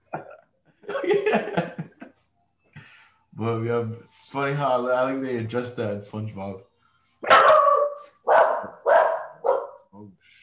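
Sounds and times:
laughter: 0.0s - 2.2s
speech: 3.4s - 6.7s
female dog barking: 7.2s - 9.9s.

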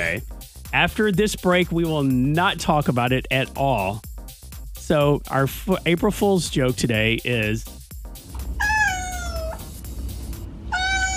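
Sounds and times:
speech: 0.2s - 4.1s, 4.9s - 7.7s
steady low hum: 8.2s - 11.1s
cat meowing: 8.4s - 9.7s, 10.7s - 11.1s.

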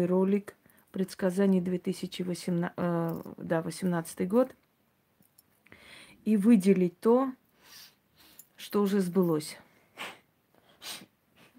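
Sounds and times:
speech: 0.0s - 4.6s, 6.2s - 7.8s, 8.6s - 10.2s
woman sniffling from nerves: 9.9s - 11.5s.

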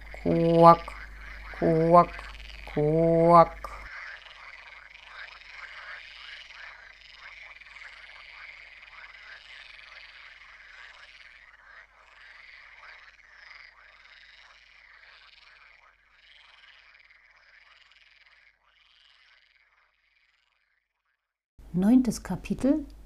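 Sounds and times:
frogs croaking in chorus: 0.0s - 20.8s
speech: 0.2s - 1.0s, 1.6s - 3.7s, 22.0s - 23.0s.

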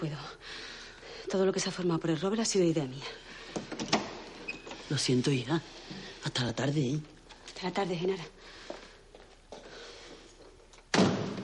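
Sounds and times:
speech: 0.0s - 0.6s, 1.2s - 3.7s, 4.9s - 8.6s
door closing thud: 10.9s - 11.4s.

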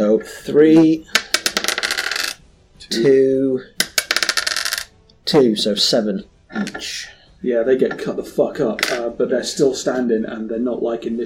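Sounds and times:
speech: 0.2s - 1.2s, 2.9s - 3.7s, 5.3s - 11.2s
four four-sided dice clattering across a surface: 1.1s - 2.4s, 3.8s - 4.9s, 8.8s - 9.1s.

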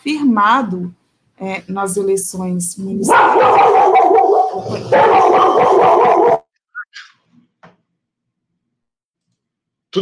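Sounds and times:
speech: 0.0s - 6.0s
dogs barking: 3.0s - 6.5s.

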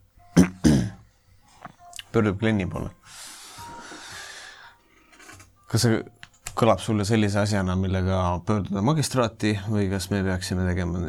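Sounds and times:
soft throat-clearing cough: 0.4s - 1.0s
speech: 2.1s - 3.2s, 5.7s - 11.0s.

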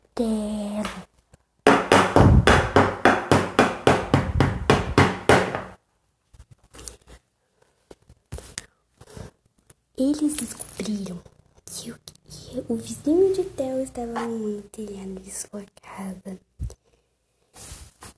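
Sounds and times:
hammer pounding: 1.7s - 5.8s
speech: 10.2s - 12.0s, 12.7s - 16.5s.

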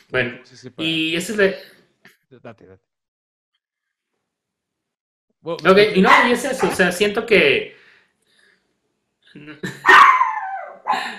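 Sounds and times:
speech: 0.1s - 2.9s, 5.4s - 7.8s, 9.3s - 10.2s, 10.9s - 11.1s
dog barking: 6.0s - 6.9s, 9.8s - 11.0s.

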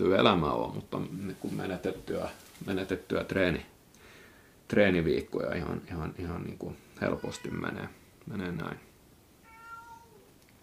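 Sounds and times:
speech: 0.0s - 3.7s, 4.7s - 8.9s
cat meowing: 7.0s - 7.8s, 9.4s - 10.3s.

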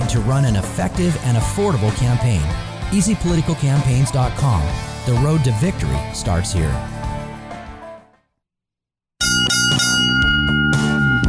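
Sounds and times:
speech: 0.1s - 7.0s
bell ringing: 9.2s - 11.2s.

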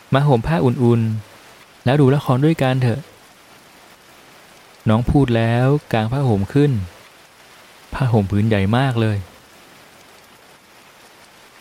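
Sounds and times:
rain falling in dense drops: 0.0s - 11.5s
speech: 0.1s - 3.1s, 4.8s - 7.0s, 8.0s - 9.3s.

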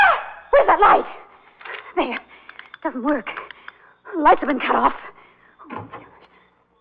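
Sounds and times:
hiss: 0.2s - 6.7s
speech: 3.0s - 3.4s, 4.2s - 5.1s
door opening with creak: 5.6s - 6.4s.

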